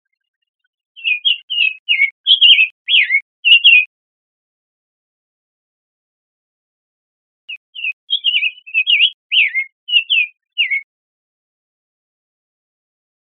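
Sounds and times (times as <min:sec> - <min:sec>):
Summer tanager song with slurred whistled phrases: 0:01.0 - 0:03.9, 0:07.5 - 0:10.9.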